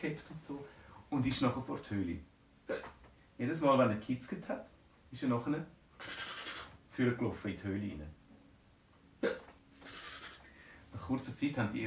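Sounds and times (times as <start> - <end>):
speech: 0.0 - 6.3, 7.0 - 8.2, 11.1 - 11.8
voice imitating a hiccup: 2.7 - 3.0, 9.2 - 10.4.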